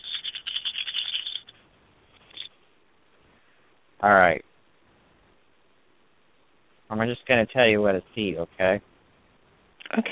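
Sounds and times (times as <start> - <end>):
dice rolled to answer a question clattering on a hard surface: 0.0 - 1.5
speech: 4.0 - 4.5, 6.9 - 8.9, 9.9 - 10.1.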